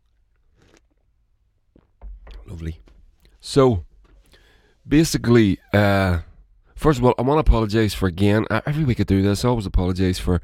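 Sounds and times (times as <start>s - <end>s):
slurping sip of hot coffee: 0.4s - 1.1s
speech: 2.5s - 3.9s, 4.9s - 10.4s.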